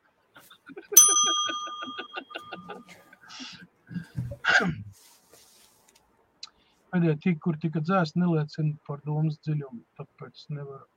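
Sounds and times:
small bell struck: 1.0s - 2.8s
speech: 7.0s - 10.9s.

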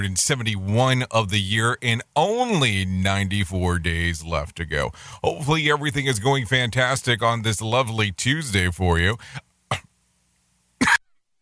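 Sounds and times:
speech: 0.0s - 9.9s
harsh coughs: 9.7s - 9.9s, 10.8s - 11.2s.

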